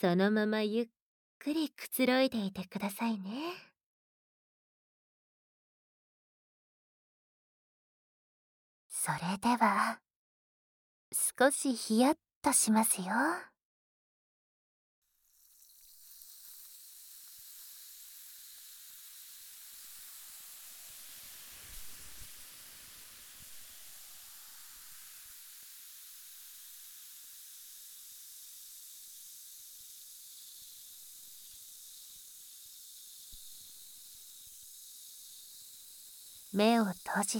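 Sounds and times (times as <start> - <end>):
speech: 0.0 - 3.7, 9.0 - 10.0, 11.2 - 13.5, 36.6 - 37.3
carbonated bubbles fizzing and crackling: 15.1 - 37.3.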